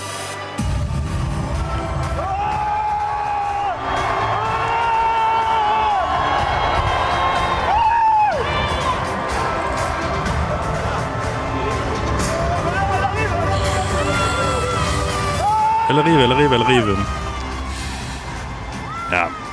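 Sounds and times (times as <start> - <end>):
political rally crowd roaring and cheering in exhibition centre: 0.6 - 19.5
scattered shouts at political rally: 2.2 - 17.2
speech: 16.5 - 17.2.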